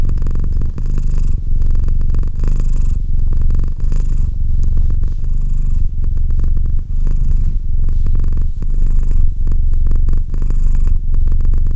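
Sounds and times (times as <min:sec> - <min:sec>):
domestic cat purring: 0:00.0 - 0:11.7.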